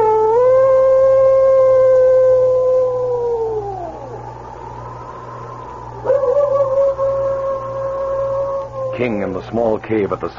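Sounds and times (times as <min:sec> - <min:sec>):
animal howling: 0:00.0 - 0:09.6
faint low hum: 0:00.0 - 0:10.3
speech: 0:09.0 - 0:10.3.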